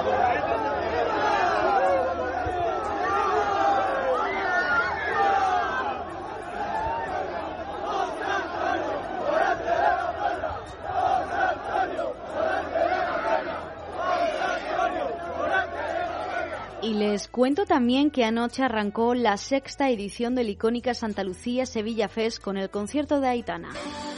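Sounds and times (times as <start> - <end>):
large crowd of fans cheering and chanting a name: 0.0 - 17.3
speech: 17.4 - 24.0.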